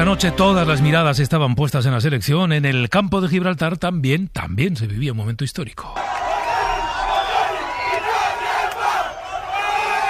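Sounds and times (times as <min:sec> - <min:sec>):
speech: 0:00.1 - 0:06.0
crowd of neighbours cheering a border fence being torn down: 0:06.0 - 0:10.0.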